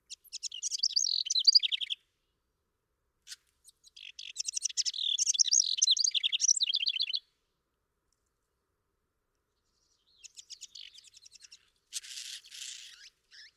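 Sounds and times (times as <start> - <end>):
house wren singing gurgling cascade of notes and trills: 0.1 - 2.0, 3.9 - 7.2, 9.8 - 13.5.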